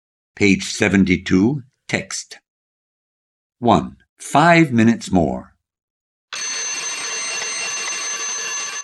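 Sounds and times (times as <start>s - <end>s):
speech: 0.4s - 2.4s, 3.6s - 5.5s
alarm clock ringing: 6.3s - 8.8s.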